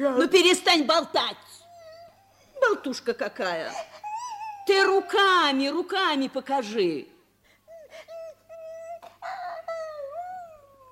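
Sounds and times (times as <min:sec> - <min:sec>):
speech: 0:00.0 - 0:01.5, 0:02.6 - 0:04.0, 0:04.7 - 0:07.1
person whimpering like a puppy: 0:01.6 - 0:02.7, 0:03.7 - 0:05.2, 0:07.6 - 0:10.8.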